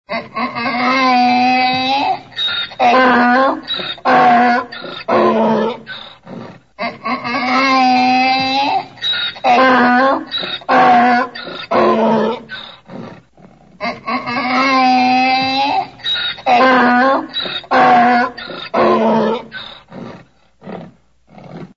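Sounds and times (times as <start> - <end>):
donkey braying: 0.1 - 13.2, 13.8 - 21.7.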